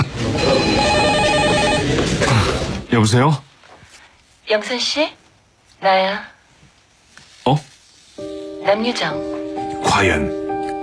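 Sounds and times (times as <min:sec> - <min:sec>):
telephone ringing with warbling electronic trill: 0:00.2 - 0:02.2
hiss: 0:02.2 - 0:10.8
speech: 0:03.0 - 0:03.5, 0:04.5 - 0:05.2, 0:05.8 - 0:06.3, 0:07.4 - 0:10.4.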